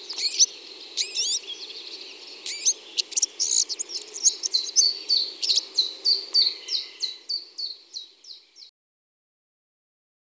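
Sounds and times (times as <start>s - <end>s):
Red-backed shrike Lanius collurio calling: 0.1s - 1.5s, 2.3s - 7.1s.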